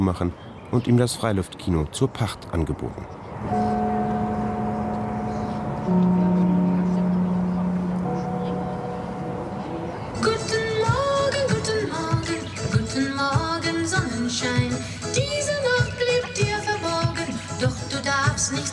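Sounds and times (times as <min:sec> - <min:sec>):
speech: 0:00.0 - 0:04.0, 0:05.9 - 0:06.4, 0:14.3 - 0:15.8
busy sounds: 0:00.0 - 0:18.7
old cinema gong signal: 0:03.5 - 0:10.3.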